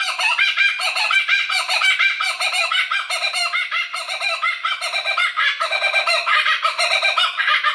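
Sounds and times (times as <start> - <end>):
laughing kookaburra Dacelo novaeguineae calling in a chorus: 0.0 - 7.7.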